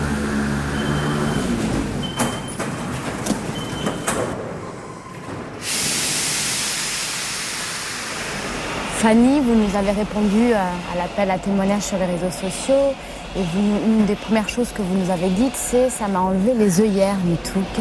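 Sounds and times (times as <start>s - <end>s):
moving Paris metro line 13 carriage rumbling hiss: 0.0s - 17.8s
metro carriage clanks and thumps: 2.0s - 5.6s
sustained loud rush of noise: 5.6s - 16.0s
speech: 9.0s - 17.8s.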